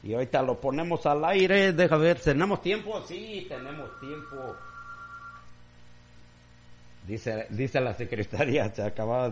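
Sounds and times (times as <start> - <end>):
speech: 0.0 - 4.7, 7.1 - 9.3
low steady hum: 0.0 - 9.3
telephone ringing on a second incoming line at a studio: 3.3 - 5.5.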